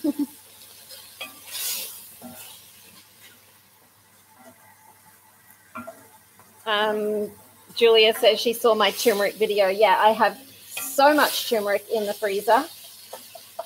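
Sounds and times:
steam hissing: 0.0 - 3.4, 6.7 - 13.6
mince sizzling in an unwashed metal pot: 0.0 - 13.6
speech: 6.7 - 10.4, 11.0 - 12.8.

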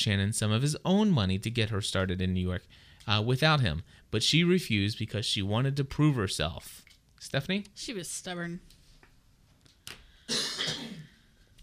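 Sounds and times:
speech: 0.0 - 8.8
person coughing harshly: 10.3 - 11.2.

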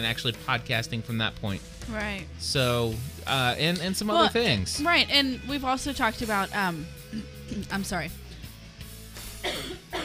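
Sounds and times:
speech: 0.0 - 8.2
woman coughing: 9.4 - 10.0.

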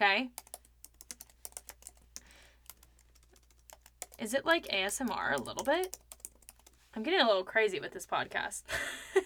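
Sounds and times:
speech: 0.0 - 0.5, 4.2 - 6.0, 6.9 - 9.2
typing on a computer keyboard: 0.3 - 6.8.

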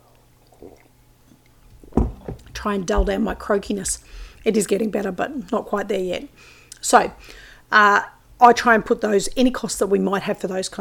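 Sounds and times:
person sipping hot tea: 0.0 - 1.8
slurping hot tea: 0.0 - 1.8
faint mouth noises: 0.0 - 1.9
person swallowing: 0.4 - 1.0
speech: 2.6 - 10.7.

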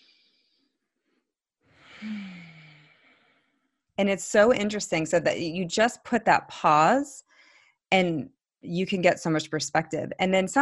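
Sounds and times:
deep breath: 0.0 - 3.8, 7.3 - 7.8
speech: 4.0 - 7.3, 7.9 - 10.6.

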